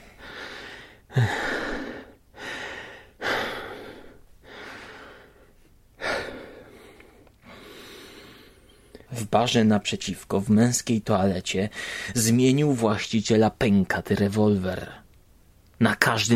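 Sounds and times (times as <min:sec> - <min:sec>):
heavy breathing over a telephone line: 0:00.0 - 0:09.1, 0:11.7 - 0:12.2
speech: 0:01.2 - 0:01.4, 0:09.3 - 0:15.0, 0:15.8 - 0:16.3.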